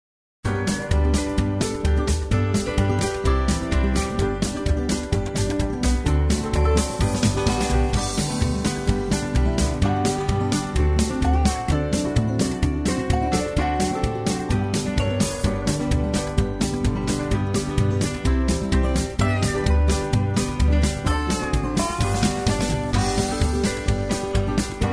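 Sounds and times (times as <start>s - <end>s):
square dance music without melody: 0.5s - 24.9s.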